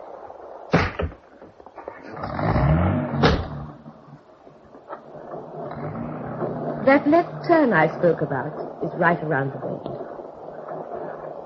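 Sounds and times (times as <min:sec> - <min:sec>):
car engine starting and revving as the car drives off: 0:01.9 - 0:04.9, 0:05.6 - 0:08.3
car door slamming shut: 0:03.1 - 0:03.7
clunk: 0:03.1 - 0:03.7
speech: 0:06.9 - 0:09.9.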